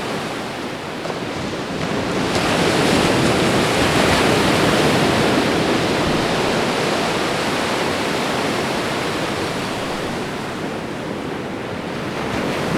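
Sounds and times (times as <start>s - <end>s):
gentle ocean waves: 0.0s - 12.7s.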